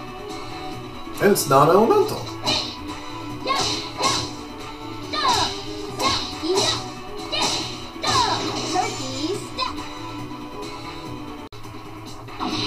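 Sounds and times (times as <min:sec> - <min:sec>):
low rumbling video game backdrop: 0:00.0 - 0:12.6
speech: 0:01.2 - 0:02.4
video game tentacle whip lashes and swishes: 0:03.4 - 0:04.4, 0:05.2 - 0:09.0.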